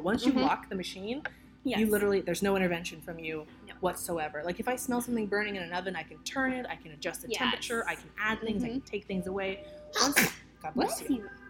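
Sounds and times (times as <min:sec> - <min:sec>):
speech: 0:00.0 - 0:11.4
short voiced sounds: 0:09.9 - 0:10.4
person sneezing: 0:10.0 - 0:10.4.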